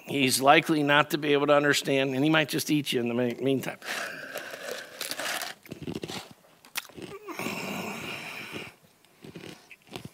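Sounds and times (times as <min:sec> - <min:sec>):
speech: 0:00.1 - 0:04.2
crunching and grinding of ice cubes being chewed: 0:03.8 - 0:07.4, 0:08.0 - 0:10.1.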